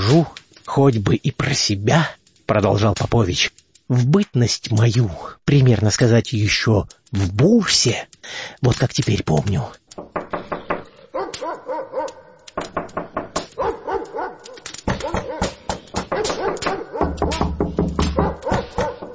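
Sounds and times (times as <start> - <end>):
speech: 0.1 - 9.8
dog barking in a yard: 11.1 - 12.4, 13.6 - 17.5, 18.1 - 19.1.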